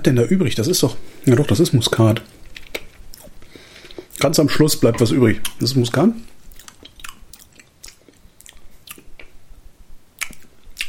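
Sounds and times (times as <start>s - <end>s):
speech: 0.0s - 2.4s, 4.2s - 6.3s
wet lip-smacking and chewing while tasting food: 2.1s - 4.3s, 6.5s - 9.4s, 10.2s - 10.8s.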